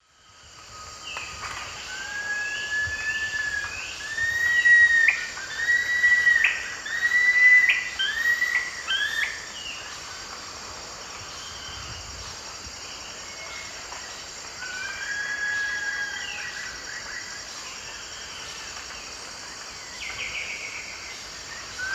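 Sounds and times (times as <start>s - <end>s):
Nasica longirostris song in the Eastern Lowlands of South America: 0.0s - 21.9s.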